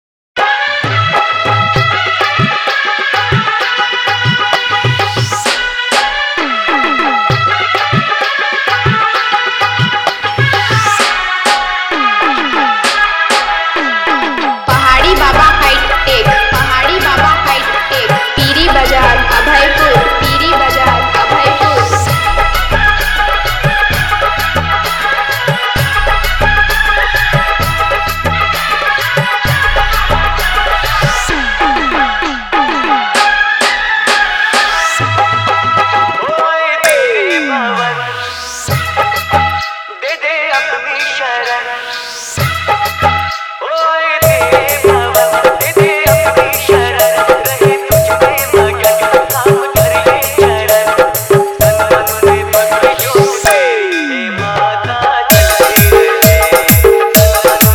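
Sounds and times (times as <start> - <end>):
hard dholki drumming: 0.4 - 38.0, 38.7 - 41.5, 42.3 - 57.7
DJ remix of a festival song: 4.4 - 7.9, 10.0 - 35.2, 44.2 - 54.4, 55.3 - 57.7.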